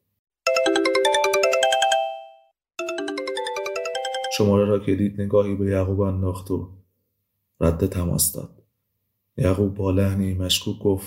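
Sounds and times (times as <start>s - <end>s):
mobile phone ringtone with bright rapid melodic tones: 0.4s - 4.8s
speech: 4.4s - 6.8s, 7.6s - 8.6s, 9.4s - 11.0s.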